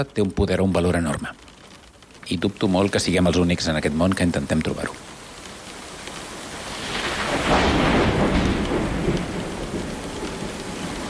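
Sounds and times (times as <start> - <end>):
speech: 0.0 - 1.5, 2.3 - 5.1
heavy rain hammering against windows: 0.0 - 11.0
deep roll of thunder: 6.6 - 11.0.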